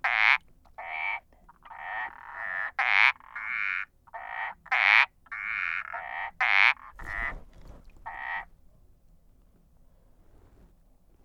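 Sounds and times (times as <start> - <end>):
Indian balloon frog Uperodon palmatus calling with harsh nasal croaks: 0.0 - 7.4, 8.0 - 8.5.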